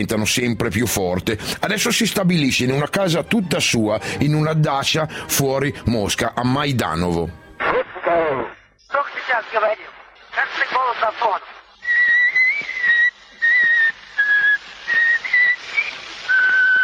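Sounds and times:
speech: 0.0 - 11.6
faint phonograph surface hiss: 11.8 - 16.8
whistling on an 1890 Edison phonograph recording: 11.8 - 16.8.

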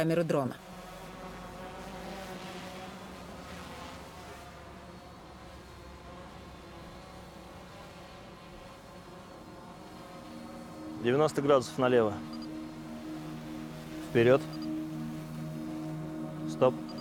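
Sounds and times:
speech: 0.0 - 0.7, 11.0 - 12.4, 14.1 - 14.7, 16.6 - 16.9
drone flying near a hospital building: 4.9 - 16.9.

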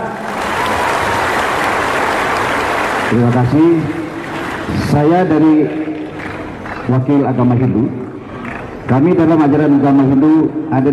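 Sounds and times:
audience applause at a foundation event: 0.0 - 5.1, 6.0 - 6.9
speech: 3.1 - 4.0, 4.7 - 6.0, 6.9 - 8.0, 8.9 - 10.9.

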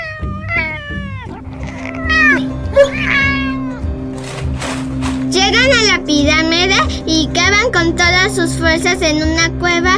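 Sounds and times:
cat meowing in a jungle setting: 0.0 - 3.9
speech: 5.5 - 9.9.

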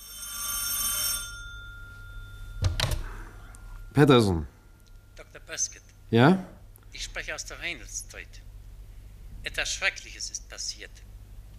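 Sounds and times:
telephone bell ringing: 0.0 - 4.4
speech: 4.0 - 4.6, 5.5 - 8.5, 9.4 - 11.1.

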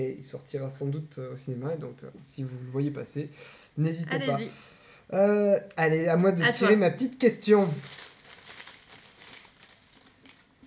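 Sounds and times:
speech: 0.0 - 8.1
small piece of paper crumpling: 6.5 - 10.6.

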